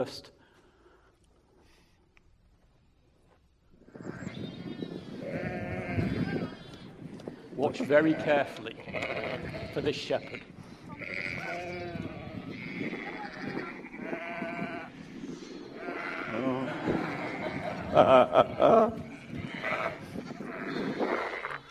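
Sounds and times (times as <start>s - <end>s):
speech: 0.0s - 0.4s, 7.6s - 10.6s, 18.0s - 19.0s
flock of sheep bleating: 5.2s - 6.7s, 7.9s - 14.9s, 15.8s - 18.0s, 18.6s - 21.6s
laughter: 16.4s - 19.1s.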